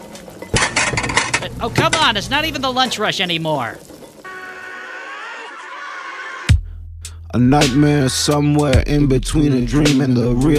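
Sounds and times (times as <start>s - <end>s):
dishes and cutlery clattering while being washed in a sink: 0.0s - 2.1s
speech: 1.4s - 3.9s, 7.3s - 10.5s.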